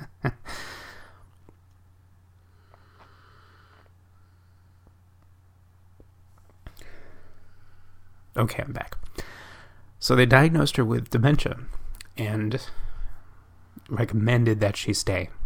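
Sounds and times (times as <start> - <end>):
deep breath: 0.4 - 1.3, 2.4 - 5.0, 6.7 - 8.3, 9.1 - 9.9, 12.6 - 13.5
speech: 8.4 - 9.2, 10.0 - 12.8, 13.8 - 15.4.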